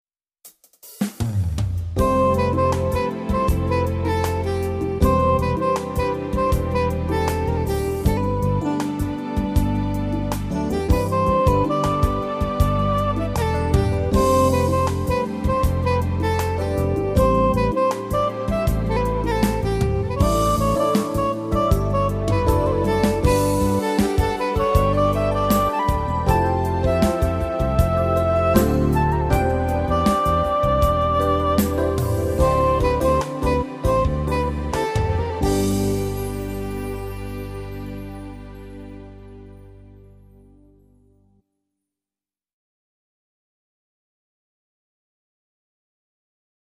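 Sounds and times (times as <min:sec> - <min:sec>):
soprano saxophone: 0:02.0 - 0:38.4.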